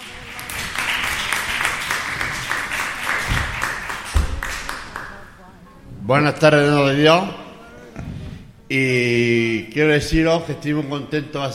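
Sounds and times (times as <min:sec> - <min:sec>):
audience applause at a radio workshop event: 0:00.0 - 0:05.3
speech: 0:06.1 - 0:07.4, 0:08.7 - 0:11.5.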